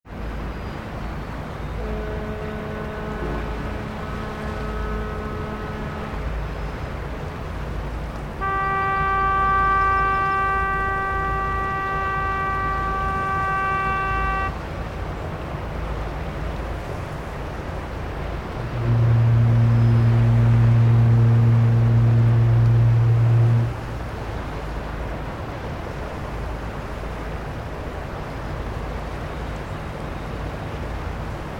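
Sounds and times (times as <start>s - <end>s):
fog horns on Isle Royale: 1.6s - 15.3s, 18.1s - 25.3s.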